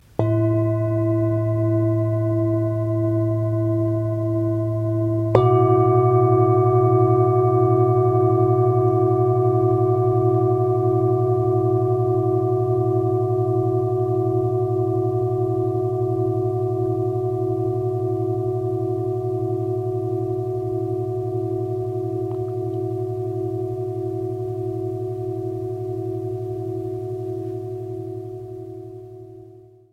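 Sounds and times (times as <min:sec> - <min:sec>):
singing bowls: 0:00.0 - 0:29.9.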